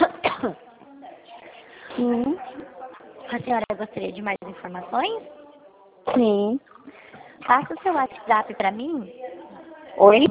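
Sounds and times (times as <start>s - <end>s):
person coughing harshly: 0.0s - 0.6s
speech: 0.4s - 0.6s, 2.0s - 2.5s, 3.3s - 5.4s, 6.0s - 9.2s, 10.0s - 10.2s
quiet breathing: 1.3s - 2.1s, 6.8s - 7.5s.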